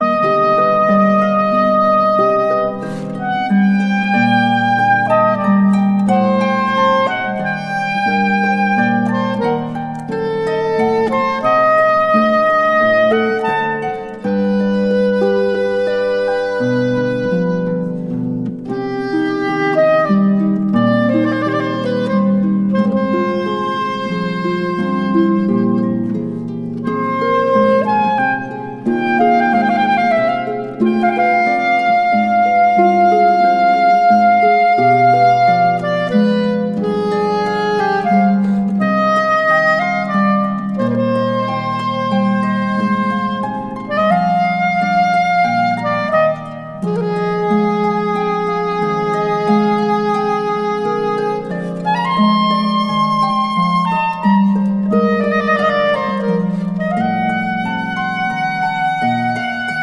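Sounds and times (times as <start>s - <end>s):
soprano saxophone playing largo: 0.0s - 59.8s.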